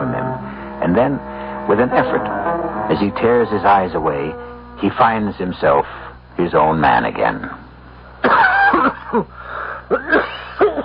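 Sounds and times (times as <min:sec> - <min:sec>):
speech: 0:00.8 - 0:07.6, 0:09.1 - 0:10.1
harsh rasping hacking cough with a wet strained throat: 0:08.2 - 0:09.3, 0:09.9 - 0:10.8.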